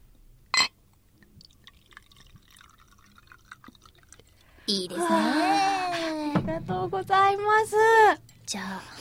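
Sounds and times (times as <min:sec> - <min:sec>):
brief sharp clink: 0:00.6 - 0:00.8
sake poured into a glass: 0:01.2 - 0:04.9
speech: 0:04.7 - 0:05.5, 0:06.8 - 0:08.9.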